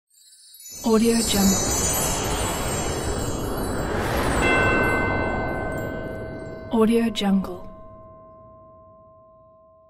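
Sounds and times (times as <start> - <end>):
christmas whoosh: 1.3 - 8.2.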